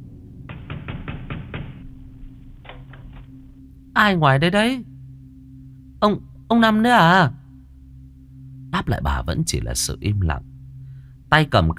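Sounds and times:
low hum: 0.0 - 11.7
hard forceful knocking on the door of a house at night: 0.5 - 1.8
speech: 4.0 - 4.9, 6.0 - 7.4, 8.7 - 10.5, 11.3 - 11.7.

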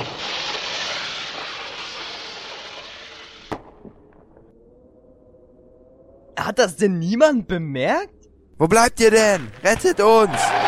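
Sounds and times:
firework cartridge ignited and hissing: 0.0 - 3.7
speech: 6.4 - 10.6.

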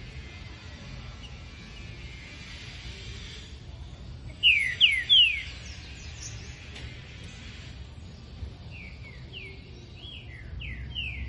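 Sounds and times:
male Green-winged Saltator singing descending whistles: 4.4 - 5.6.

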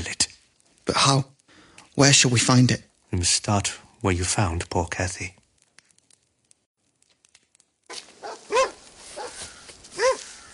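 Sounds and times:
speech: 0.9 - 1.3, 2.0 - 5.4
dogs barking while roaming on a search: 7.9 - 10.4
faint rustling: 7.9 - 10.5.

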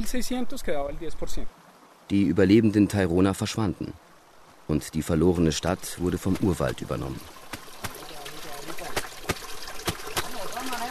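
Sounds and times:
speech: 0.0 - 4.1, 4.7 - 7.4
stream water trickling and gurgling in a creek in Colombia: 0.0 - 10.8
stone beaten against a shirt over running water: 6.2 - 8.0.

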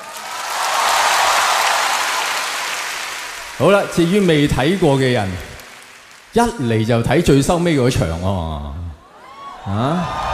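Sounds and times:
audience clapping hands: 0.0 - 7.8
speech: 3.6 - 5.5, 6.3 - 8.9, 9.6 - 10.3.

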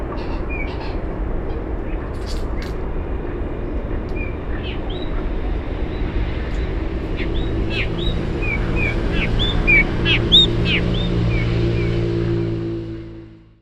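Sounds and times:
droning hum: 0.0 - 13.6
steady low-pitched noise: 0.0 - 13.6
Yellow-backed oriole Icterus Chrysater whistled calls in a wetland: 4.1 - 12.2.

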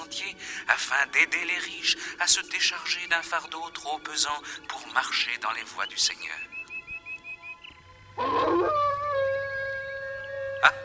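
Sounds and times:
speech: 0.7 - 6.6, 10.6 - 10.8
wolf howling in a stage radio play: 8.2 - 10.8.

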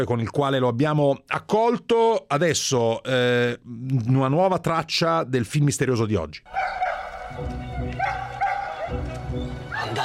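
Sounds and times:
speech: 0.0 - 8.0
dogs barking and yipping in a film soundtrack: 6.5 - 10.0.

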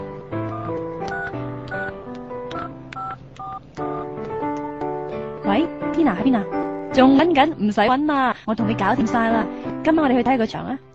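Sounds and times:
touch-tone telephone dialing beeps: 0.5 - 1.9, 2.5 - 4.1
speech: 5.5 - 10.9.

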